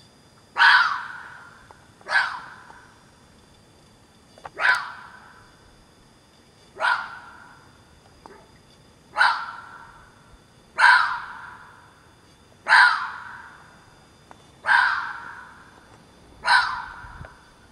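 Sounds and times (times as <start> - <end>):
low steady background noise: 0.0 - 17.7
fox barking harsh hoarse calls: 0.6 - 1.2, 2.1 - 2.6, 4.6 - 5.0, 6.8 - 7.4, 9.2 - 9.8, 10.8 - 11.4, 12.6 - 13.3, 14.6 - 15.5, 16.4 - 17.0.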